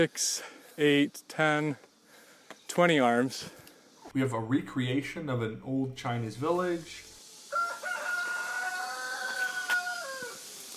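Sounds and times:
speech: 0:00.0 - 0:01.9, 0:02.7 - 0:07.1
rooster crowing at a recreated old Chinese village: 0:07.5 - 0:10.5.

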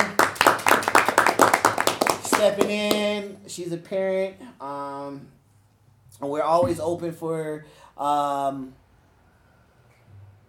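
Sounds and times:
applause from a small group: 0:00.0 - 0:03.1
speech: 0:02.4 - 0:05.4, 0:06.1 - 0:08.8.

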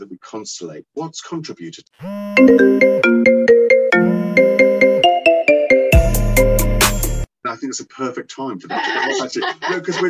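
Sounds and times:
speech: 0:00.0 - 0:03.3, 0:07.6 - 0:10.0
phone ringtone with bright rapid electronic melody: 0:02.1 - 0:06.5
laughter: 0:08.6 - 0:10.0.

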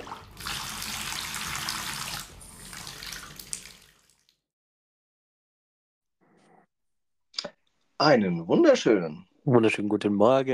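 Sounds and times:
cold tap water gushing into a bathtub: 0:00.0 - 0:04.5
speech: 0:08.0 - 0:10.5.

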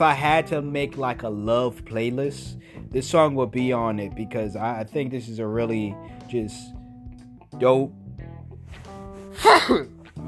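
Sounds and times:
speech: 0:00.0 - 0:06.8, 0:07.5 - 0:08.0, 0:09.4 - 0:10.0
quiet music: 0:00.0 - 0:10.2
loud sneeze: 0:09.3 - 0:10.0.

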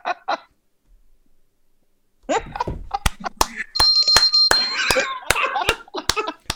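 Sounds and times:
people laughing: 0:02.3 - 0:06.5
sharp handclaps: 0:03.0 - 0:06.5
clap-activated bell ringing brightly: 0:03.8 - 0:05.1.

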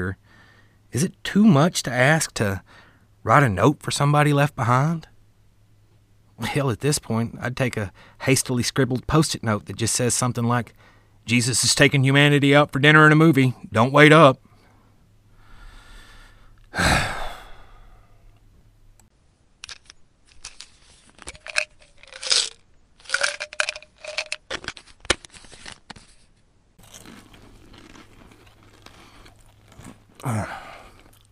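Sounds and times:
speech: 0:00.0 - 0:00.2, 0:00.9 - 0:05.1, 0:06.4 - 0:14.5, 0:16.7 - 0:17.1
loud breathy sighs: 0:15.4 - 0:18.4, 0:30.2 - 0:31.1
pills crunching when chewed: 0:19.6 - 0:26.0, 0:26.8 - 0:31.3.

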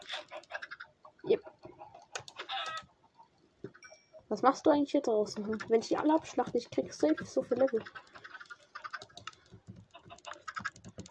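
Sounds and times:
small chicken clucking: 0:00.0 - 0:03.4, 0:05.4 - 0:09.2, 0:09.9 - 0:10.8
speech: 0:01.3 - 0:01.5, 0:04.3 - 0:08.0.

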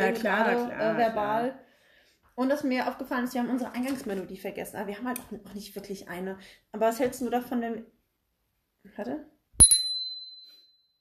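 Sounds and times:
speech: 0:00.1 - 0:01.7, 0:02.4 - 0:08.0, 0:08.8 - 0:09.3
bicycle bell ringing: 0:09.6 - 0:10.9.

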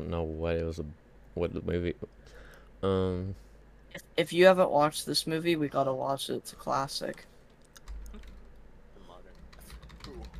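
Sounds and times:
speech: 0:00.0 - 0:07.3
low hum: 0:00.0 - 0:10.3
typing on a computer keyboard: 0:07.7 - 0:08.5, 0:09.3 - 0:10.3.

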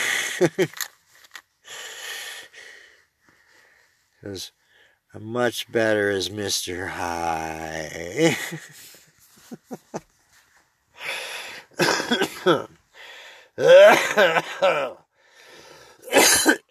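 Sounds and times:
speech: 0:00.4 - 0:00.9, 0:04.2 - 0:10.1, 0:11.8 - 0:12.8, 0:13.6 - 0:15.0
person breathing: 0:01.6 - 0:05.1, 0:10.9 - 0:11.8, 0:12.9 - 0:13.6, 0:15.1 - 0:16.1
harsh coughing fits: 0:11.8 - 0:12.7, 0:13.6 - 0:15.0, 0:16.1 - 0:16.6
raspy throat clearing: 0:11.8 - 0:12.8, 0:13.6 - 0:15.0, 0:16.1 - 0:16.6.

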